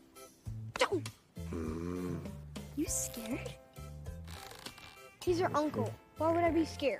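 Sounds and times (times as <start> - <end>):
man snoring while asleep: 1.4 - 2.5
speech: 2.8 - 3.6, 5.2 - 6.9.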